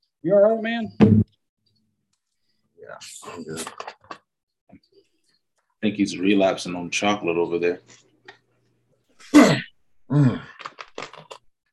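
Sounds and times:
speech: 0.2 - 1.2, 2.9 - 4.0, 5.8 - 8.1, 9.3 - 10.6
person coughing: 9.2 - 10.5
person clearing throat: 9.2 - 10.6.

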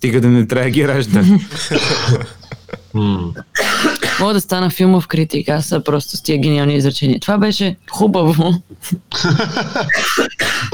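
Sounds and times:
speech: 0.0 - 3.6, 4.2 - 10.7
laughter: 1.2 - 3.2, 9.1 - 10.0
person coughing: 3.5 - 4.3, 9.1 - 10.7.

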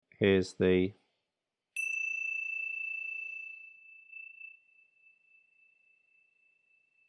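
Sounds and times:
speech: 0.2 - 1.0
Tibetan ting sha cymbals ringing: 1.8 - 7.0.

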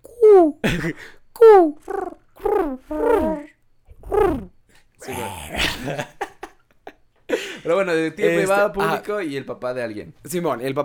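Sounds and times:
speech: 0.6 - 2.0, 7.7 - 10.8
person imitating pigeon cooing: 1.4 - 5.9
laughter: 5.6 - 6.6.

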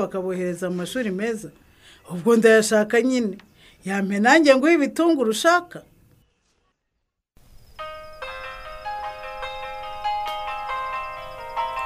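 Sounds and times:
speech: 0.0 - 5.9
faint melodic electronic phone ringtone: 7.8 - 11.8.

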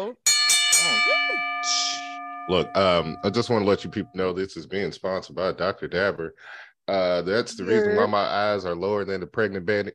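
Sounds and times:
speech: 0.0 - 0.2, 0.8 - 9.9
bell struck and ringing with a bright sustained tone: 0.2 - 4.4.

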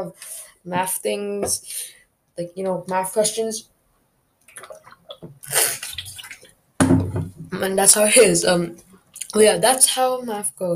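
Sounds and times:
speech: 0.0 - 3.7, 4.6 - 5.9, 7.5 - 10.7
person drinking water: 4.4 - 6.6.

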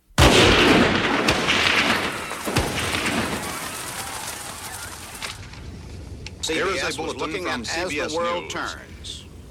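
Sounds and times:
gunshots: 0.2 - 5.5
speech: 6.5 - 8.9.

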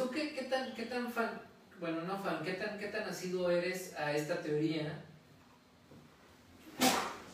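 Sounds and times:
speech: 0.5 - 5.1
single sharp sneeze: 6.8 - 7.2.

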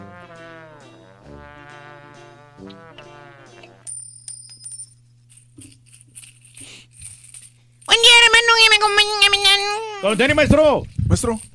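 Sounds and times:
droning buzzing tone: 0.0 - 4.2
low hum: 0.0 - 5.0
coins clinking: 2.8 - 9.2
speech: 10.0 - 11.5.

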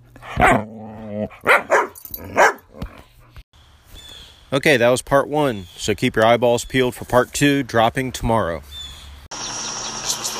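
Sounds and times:
dog barking: 0.3 - 0.7, 1.4 - 2.8
speech: 4.5 - 8.8.

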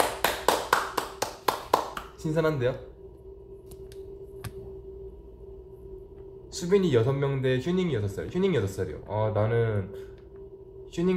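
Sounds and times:
sharp hand claps: 0.0 - 2.2
speech: 2.2 - 2.9, 6.6 - 10.1, 11.0 - 11.1.

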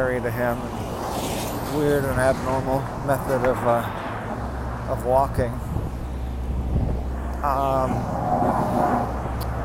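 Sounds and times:
speech: 0.0 - 4.0, 4.9 - 5.6, 7.4 - 9.2
steamroller and paving truck engines droning at a construction site: 5.7 - 9.6.

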